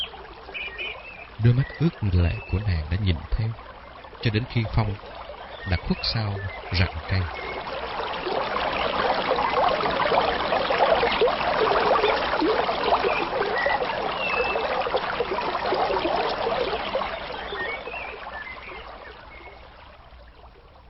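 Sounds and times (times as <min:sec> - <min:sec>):
water flowing in a stream by a riverbank: 0:00.0 - 0:20.8
speech: 0:01.4 - 0:07.6.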